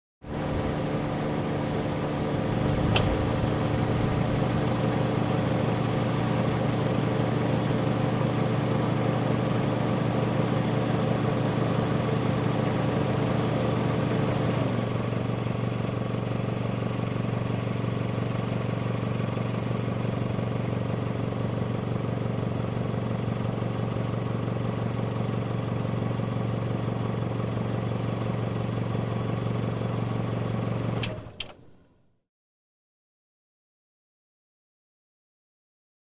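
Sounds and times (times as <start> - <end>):
car fan running: 0.3 - 7.8
car engine idling: 0.3 - 30.4.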